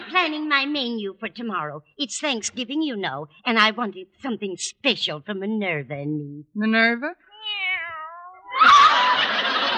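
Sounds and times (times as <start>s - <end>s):
speech: 0.2s - 7.2s
kitten meowing: 7.3s - 8.7s
laughter: 8.5s - 9.7s.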